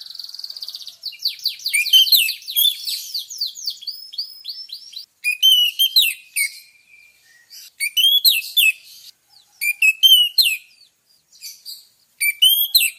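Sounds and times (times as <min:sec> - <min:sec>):
Orange-headed thrush singing vigorously as a lure recording: 0:00.0 - 0:12.9.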